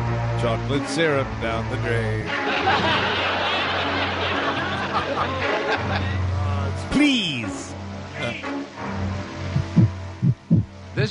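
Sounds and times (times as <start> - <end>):
speech: 0.4 - 3.3, 4.9 - 8.9
laughter: 2.3 - 6.4
steady low throbbing hum: 9.4 - 10.8
heartbeat sound effect with deep lub-dub thumps: 9.5 - 10.8.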